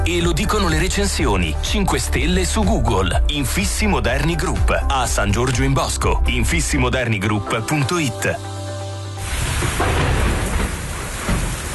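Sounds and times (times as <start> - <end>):
speech: 0.1 - 8.6
hail: 9.2 - 11.7
heavy rain: 9.2 - 11.7
thunder rumbling low: 9.2 - 11.7.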